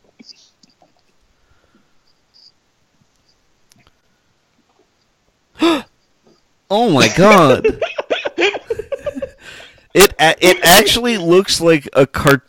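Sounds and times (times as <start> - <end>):
faint whispery rustling: 0.0 - 5.1
soft breaths: 0.0 - 6.5, 9.3 - 9.9
loud voiced gasp of surprise: 5.6 - 5.9
speech: 6.7 - 7.8, 10.0 - 12.4
laughter: 7.0 - 11.0.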